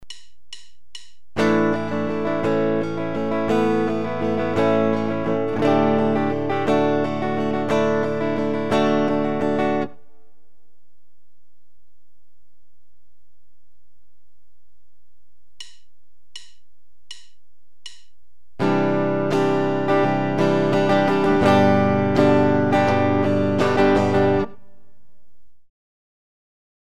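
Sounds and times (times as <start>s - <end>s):
guitar playing sus chord and add chord progressions: 1.4s - 10.5s, 18.6s - 25.2s.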